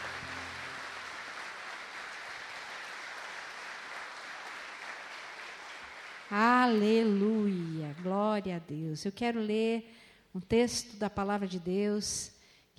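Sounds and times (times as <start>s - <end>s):
large crowd at a church service applauding: 0.0s - 8.1s
speech: 6.3s - 12.7s.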